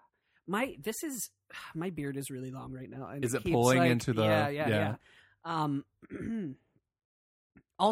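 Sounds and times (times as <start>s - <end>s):
speech: 0.5s - 6.6s, 7.8s - 7.9s
throat clearing: 6.1s - 6.6s.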